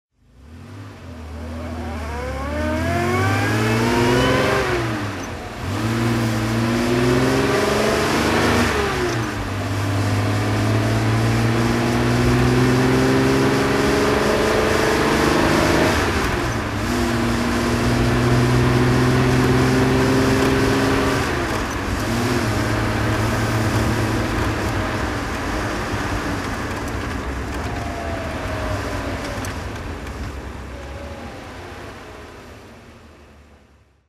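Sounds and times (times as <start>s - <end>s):
Austin Healey 3000 Mk3 car driving: 0.2s - 34.0s.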